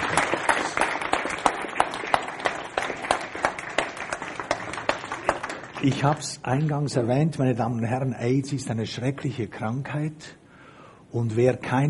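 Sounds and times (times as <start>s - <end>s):
audience applause: 0.0s - 6.3s
speech: 5.8s - 10.4s, 11.1s - 11.8s.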